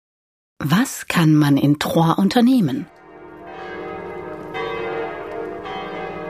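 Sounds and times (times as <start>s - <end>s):
speech: 0.6s - 3.0s
church bells ringing: 2.9s - 6.2s.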